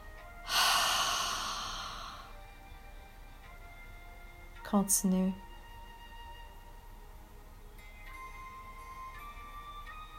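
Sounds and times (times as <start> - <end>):
long steady breath exhaled through the mouth: 0.5 - 2.4
speech: 4.7 - 5.4.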